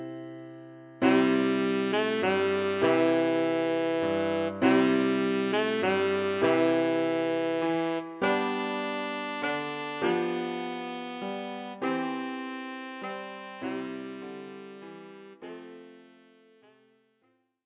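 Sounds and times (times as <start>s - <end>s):
tenor saxophone: 1.0s - 17.0s.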